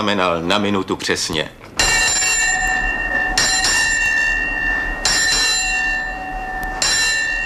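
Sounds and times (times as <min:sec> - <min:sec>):
speech: 0:00.0 - 0:01.8
ship's bell striking the time: 0:01.8 - 0:07.4.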